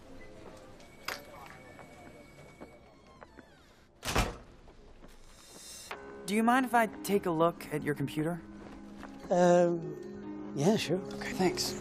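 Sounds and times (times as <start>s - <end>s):
door swinging shut with a solid thud: 4.0s - 4.6s
speech: 6.3s - 8.5s, 9.3s - 11.7s.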